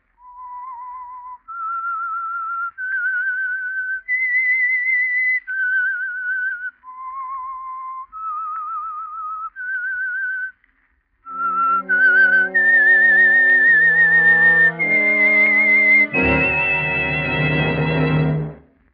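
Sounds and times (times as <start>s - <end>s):
solo whistled theme melody: 0.2s - 10.5s, 11.3s - 18.6s
full orchestra playing: 11.3s - 18.6s.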